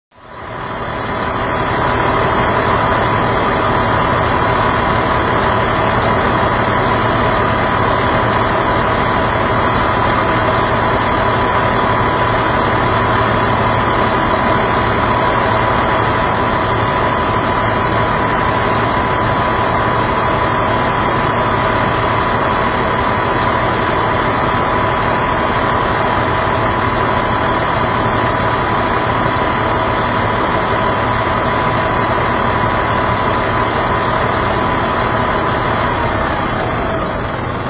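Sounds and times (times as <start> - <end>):
truck idling: 0.1 - 37.6.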